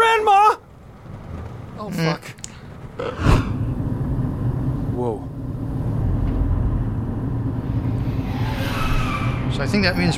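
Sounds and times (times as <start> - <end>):
speech: 1.9 - 3.3, 9.7 - 10.1
heavy road rumble of vehicles in a tunnel: 3.5 - 10.1.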